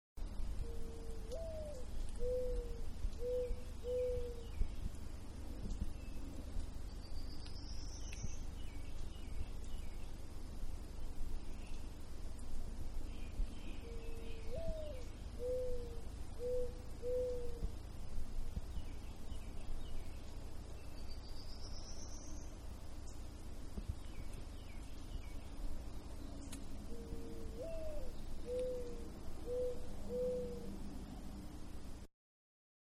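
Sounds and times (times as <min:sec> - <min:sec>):
quiet birds in background: 0:00.2 - 0:32.1
owl calling in the middle of woods: 0:00.6 - 0:04.6, 0:13.8 - 0:17.7, 0:26.9 - 0:30.8.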